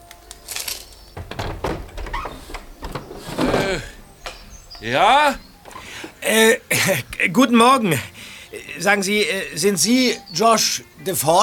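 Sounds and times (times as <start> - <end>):
house window on a side street in Venice pushed open overhead: 1.1 - 6.6
speech: 4.8 - 5.5, 6.2 - 8.1, 8.8 - 11.4.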